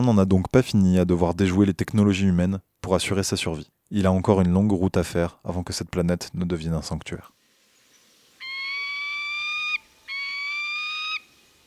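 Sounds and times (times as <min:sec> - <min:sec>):
speech: 0:00.0 - 0:07.4
peregrine falcon crying: 0:08.4 - 0:11.3.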